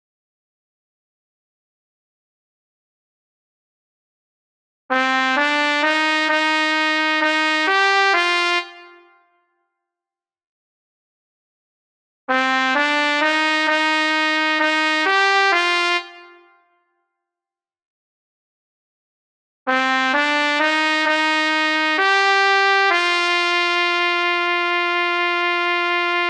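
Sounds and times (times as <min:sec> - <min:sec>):
trumpet in Bb: 0:04.9 - 0:09.3, 0:12.3 - 0:16.7, 0:19.7 - 0:26.2.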